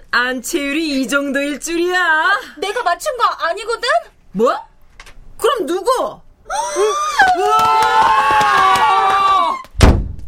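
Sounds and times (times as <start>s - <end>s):
speech: 0.2s - 4.7s, 5.4s - 9.0s
several high voices screaming and shrieking: 6.5s - 9.7s
heavy door slamming shut: 9.8s - 10.2s.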